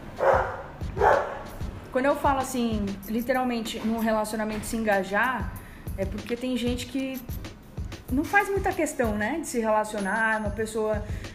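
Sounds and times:
dog barking: 0.2 - 1.5
speech: 2.0 - 7.4, 8.1 - 11.3.

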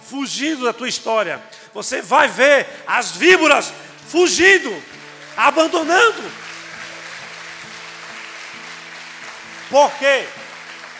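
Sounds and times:
speech: 0.1 - 6.4, 9.7 - 10.4
audience applauding: 4.4 - 10.9.

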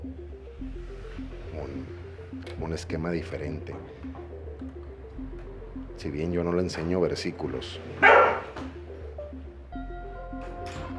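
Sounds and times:
soft tonal hum: 0.0 - 6.5, 7.5 - 10.9
speech: 1.6 - 4.2, 6.0 - 8.2
small female dog barking outside: 8.0 - 8.5.

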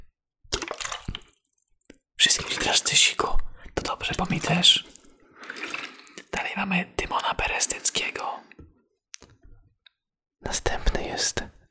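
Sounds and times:
water sloshing and squelching: 0.5 - 1.4, 2.2 - 3.2, 4.1 - 6.4
speech: 2.2 - 5.0, 6.6 - 8.5, 10.5 - 11.6.

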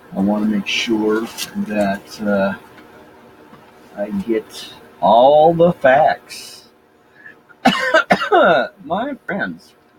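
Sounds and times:
speech: 0.2 - 2.7, 4.0 - 6.6, 7.9 - 9.8
harsh persistent cough: 7.2 - 8.7.

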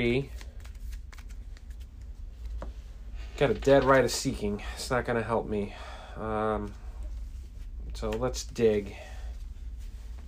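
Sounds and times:
speech: 0.0 - 0.4, 3.4 - 6.8, 8.0 - 9.1
deck of cards being shuffled during a card game: 0.1 - 2.8, 3.4 - 4.2.

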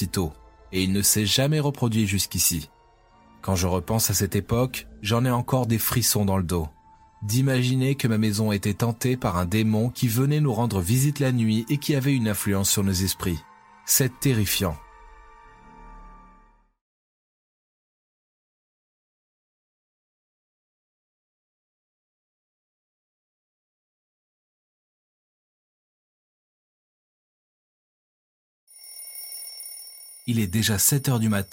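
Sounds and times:
speech: 0.2 - 2.8, 3.4 - 14.8, 30.3 - 31.5
alarm clock ringing: 28.7 - 31.5.

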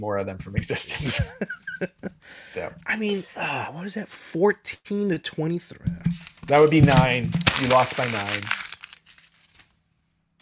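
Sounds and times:
speech: 0.0 - 8.6
laughter: 0.6 - 2.3
paper being crumpled and thrown out: 7.2 - 9.8.

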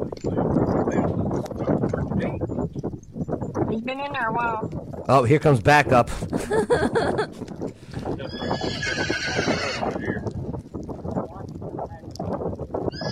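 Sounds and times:
hooves clip-clopping on a hard surface in Etheridge Tennessee: 0.0 - 13.1
speech: 0.2 - 1.1, 3.8 - 10.2
laughter: 6.1 - 7.4
big horses whinnying loudly: 8.0 - 10.3, 12.9 - 13.1.

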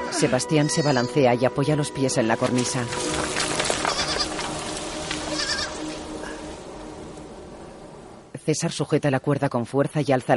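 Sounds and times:
young goat kid bleating: 0.0 - 1.2, 3.9 - 4.3, 5.3 - 5.8
speech: 0.2 - 3.3, 8.5 - 10.3
rustling noise: 2.5 - 7.8.

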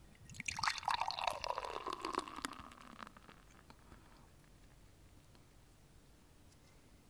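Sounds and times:
stout beer pouring into a beer glass: 0.3 - 3.8.

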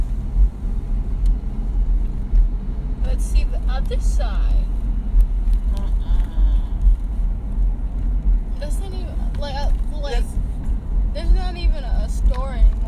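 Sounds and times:
car moving slowly with road noise heard from inside the cabin: 0.0 - 12.8
speech: 3.2 - 4.7, 11.2 - 12.8.

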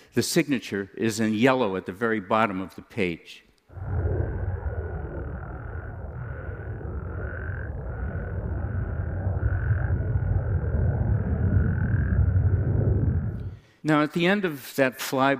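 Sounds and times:
speech: 0.2 - 4.1, 13.8 - 15.3
dense chorus of frogs trilling and croaking: 3.7 - 13.4
deep steady rumble: 3.7 - 13.7.

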